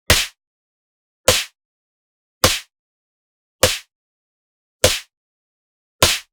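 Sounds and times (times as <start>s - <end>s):
clean high fast face slap punch: 0.1s - 0.4s, 1.3s - 1.6s, 2.4s - 2.7s, 3.6s - 3.9s, 4.8s - 5.1s, 6.0s - 6.3s.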